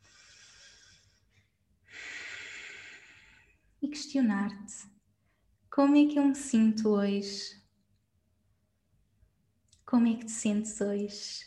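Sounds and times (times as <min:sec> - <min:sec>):
deep breathing during a guided relaxation: 0:00.0 - 0:03.7
speech: 0:03.8 - 0:05.0, 0:05.8 - 0:07.6, 0:09.9 - 0:11.4.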